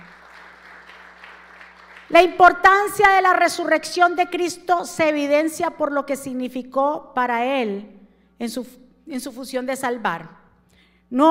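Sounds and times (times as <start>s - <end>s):
audience applauding loudly: 0.0s - 2.1s
speech: 2.1s - 10.4s, 11.1s - 11.2s.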